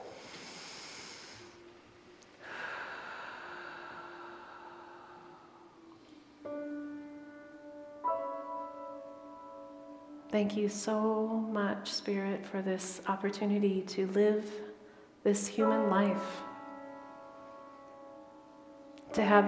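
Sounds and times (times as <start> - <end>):
deep breath during a guided meditation: 0.0 - 1.8, 2.4 - 6.5
speech: 10.3 - 14.6, 15.2 - 16.5, 19.2 - 19.4.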